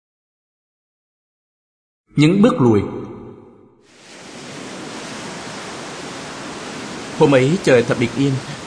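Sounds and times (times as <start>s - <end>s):
speech: 2.2s - 3.0s, 7.2s - 8.6s
ocean surf washing onto flat white sandy shore on a calm clear day: 3.8s - 8.6s.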